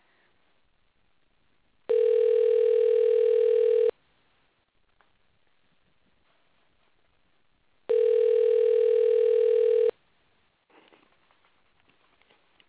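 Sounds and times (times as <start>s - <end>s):
telephone ringback tones on an outgoing call: 1.9s - 3.9s, 7.9s - 9.9s.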